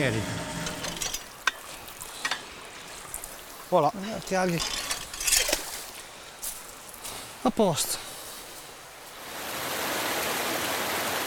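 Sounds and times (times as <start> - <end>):
speech: 0.0 - 0.4, 3.7 - 4.8, 7.4 - 8.0
water rushing into a hydroelectric penstock: 0.0 - 11.2.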